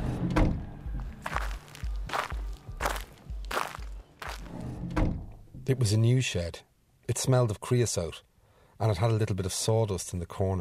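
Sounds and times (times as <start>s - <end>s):
patio door opening with a low thunk: 0.4s - 0.6s, 4.9s - 5.4s
footsteps on a hard outdoor surface: 1.0s - 4.6s
speech: 5.7s - 10.5s.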